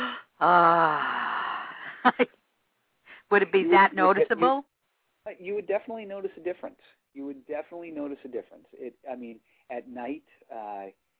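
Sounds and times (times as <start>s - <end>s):
person taking a deep breath: 0.0s - 2.0s
speech: 0.4s - 0.8s, 2.0s - 2.4s, 3.3s - 11.0s.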